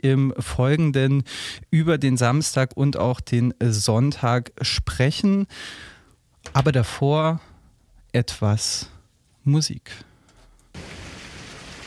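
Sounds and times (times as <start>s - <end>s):
speech: 0.0s - 7.5s, 8.1s - 10.1s
heavy rain from a thunderstorm: 10.8s - 11.8s.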